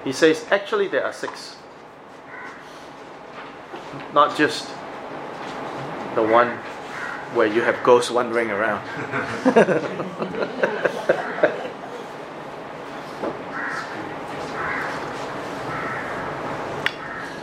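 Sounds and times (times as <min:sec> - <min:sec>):
speech: 0:00.0 - 0:01.6, 0:03.9 - 0:04.8, 0:06.1 - 0:06.7, 0:07.3 - 0:11.8
soft steady hum: 0:00.0 - 0:17.4
crows cawing: 0:02.2 - 0:03.0, 0:06.3 - 0:07.8, 0:11.0 - 0:11.7, 0:13.5 - 0:17.4
laughter: 0:08.8 - 0:12.2.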